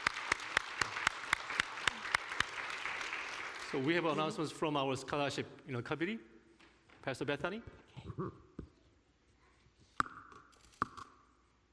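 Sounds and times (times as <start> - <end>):
audience applause: 0.0 - 4.5
speech: 3.7 - 6.3, 7.0 - 8.4.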